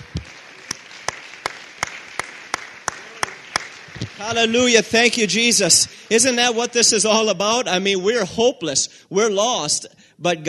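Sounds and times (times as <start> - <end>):
audience clapping hands: 0.0 - 6.8
soft room noise: 0.0 - 8.3
speech: 4.2 - 10.4.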